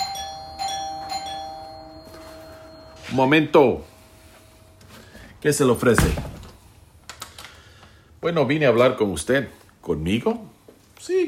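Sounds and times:
doorbell chimes: 0.0 - 6.0
speech: 3.1 - 3.9, 5.4 - 6.4, 8.2 - 11.2.

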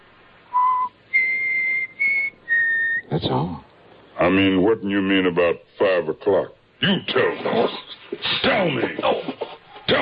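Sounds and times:
person whistling three clear notes: 0.5 - 3.0
speech: 3.2 - 10.0.

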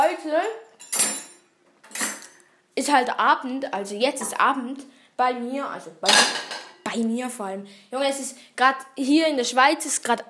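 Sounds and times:
speech: 0.3 - 0.8, 2.8 - 10.2
dishes and cutlery clattering as they are cleared away after a meal in Switzerland: 0.4 - 2.4, 6.0 - 6.8.

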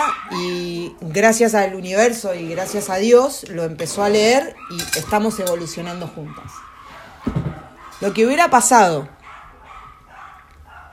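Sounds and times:
street dogs barking outdoors: 0.0 - 0.7, 2.4 - 3.2, 4.0 - 10.9
speech: 0.9 - 6.7, 8.0 - 9.2.

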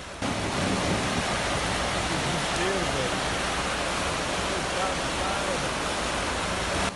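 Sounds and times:
rushing floodwater torrent: 0.0 - 6.9.

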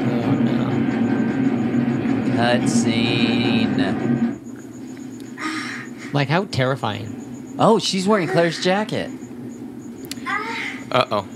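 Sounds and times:
tram bound for Nest rumbling along its rails: 0.0 - 4.4
speech: 2.4 - 4.4, 6.1 - 9.2, 10.9 - 11.3.

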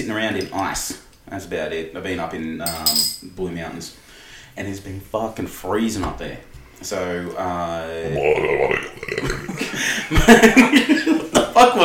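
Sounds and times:
speech: 0.0 - 4.0, 4.6 - 11.8
person imitating a long rumbling burp: 8.0 - 9.7
laughter: 9.3 - 11.6.

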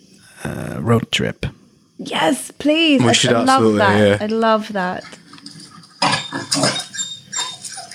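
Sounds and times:
speech: 0.4 - 5.2
female dog growling and barking: 5.5 - 7.9.

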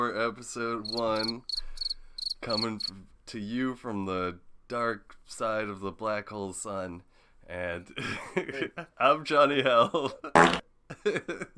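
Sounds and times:
speech: 0.0 - 1.7, 2.4 - 11.5
man blowing a raspberry with his lips imitating a fart: 10.4 - 10.6.

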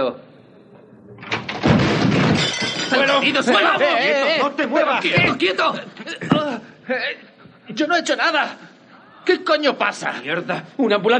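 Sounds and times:
door kicked open by armed officers: 1.2 - 3.4
crashing and shattering impact noise: 1.3 - 4.0
speech: 2.9 - 6.0, 6.9 - 8.7, 9.3 - 11.1
laughter: 3.1 - 6.7.

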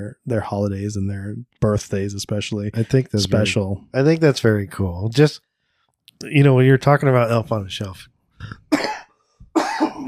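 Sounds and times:
speech: 0.0 - 5.5, 6.2 - 8.9
harsh hacking cough: 8.4 - 10.0.

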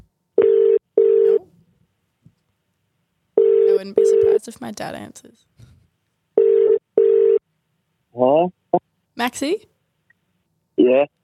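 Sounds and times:
low-pitched telephone line tone: 0.4 - 1.4, 3.4 - 4.4, 6.4 - 7.4
speech: 3.8 - 5.7, 8.2 - 9.7, 10.8 - 11.2.

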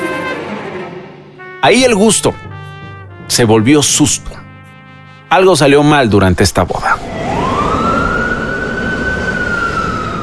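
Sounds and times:
speech: 1.6 - 2.5, 3.3 - 4.4, 5.3 - 7.1
ambulance siren wailing: 7.0 - 10.2.

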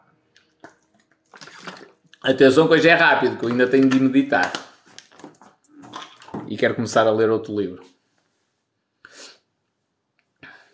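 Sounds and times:
water pouring: 0.4 - 6.6
speech: 2.2 - 4.6, 6.5 - 7.9.

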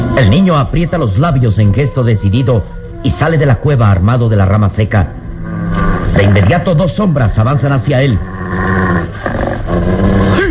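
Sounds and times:
speech: 0.2 - 5.2, 6.2 - 10.4
wolves growling and snarling angrily: 5.3 - 6.9, 8.0 - 10.4.

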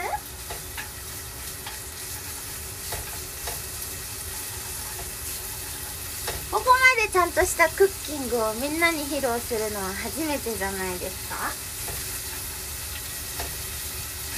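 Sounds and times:
kitchen ventilation fan humming: 0.0 - 14.3
small pieces of pork stir-frying in sesame oil in a pan: 0.0 - 14.3
disposable chopsticks stirring and scraping in a pan: 0.4 - 6.6, 11.7 - 14.3
speech: 7.1 - 11.7.

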